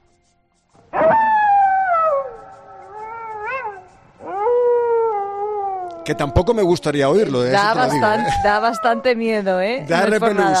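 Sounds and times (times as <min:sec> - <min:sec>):
wolf howling: 0:00.9 - 0:09.2
speech: 0:06.1 - 0:10.5.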